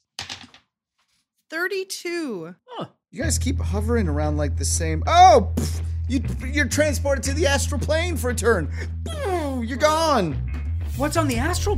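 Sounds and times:
dice rolled during a tabletop game clattering: 0.1s - 0.6s
speech: 1.5s - 11.7s.

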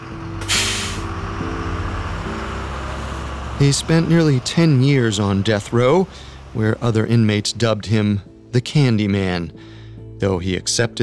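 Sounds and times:
prison bus engine idling: 0.0s - 8.6s
prison bus air brakes releasing: 0.4s - 1.2s
speech: 3.6s - 11.0s.

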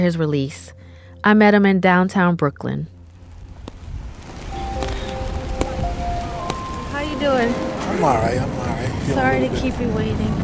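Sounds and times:
speech: 0.0s - 3.0s, 7.2s - 10.4s
faint tonal whines from street activity: 0.0s - 10.4s
steady outdoor rain in downtown Brooklyn, New York City: 3.0s - 10.4s.

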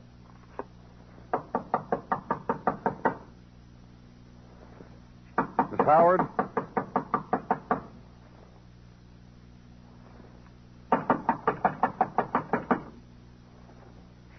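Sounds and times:
rapid loud knocking on a door: 1.3s - 3.3s, 5.4s - 7.9s, 10.9s - 12.9s
speech: 5.9s - 6.3s.

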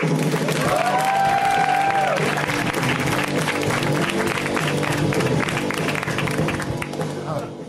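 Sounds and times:
comedy show audience applauding and cheering: 0.0s - 7.2s
whoops: 0.6s - 2.4s.

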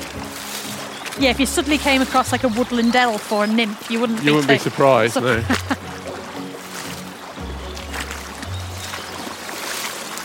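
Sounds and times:
water flowing through a beaver dam built of sticks: 0.0s - 10.2s
speech: 1.2s - 5.8s
laughter: 4.0s - 5.9s.

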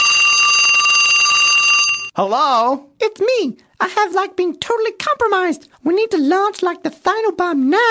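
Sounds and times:
telephone bell trilling in a hotel room: 0.0s - 2.1s
speech: 2.2s - 7.8s.

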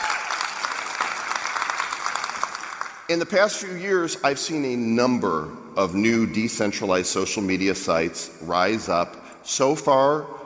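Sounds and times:
audience applause: 0.0s - 3.1s
speech: 3.1s - 10.4s.

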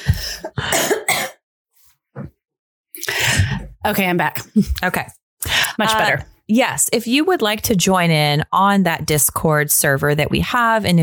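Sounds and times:
person coughing harshly: 0.0s - 1.4s
speech: 3.8s - 5.2s, 5.8s - 11.0s.

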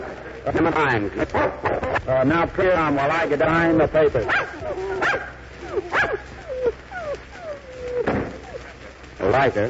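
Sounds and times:
speech: 0.4s - 6.2s, 9.2s - 9.6s
dogs barking: 1.2s - 2.1s, 4.1s - 9.6s
dogs yelping and whining: 4.2s - 8.9s.

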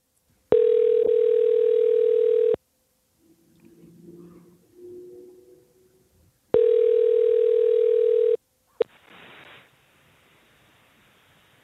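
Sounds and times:
telephone ringback tone from a call placed from a radio studio control room: 0.5s - 2.6s, 6.6s - 8.4s.

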